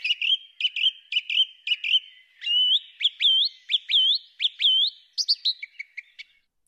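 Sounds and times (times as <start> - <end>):
songbird whistling in the early morning: 0.0 - 6.4.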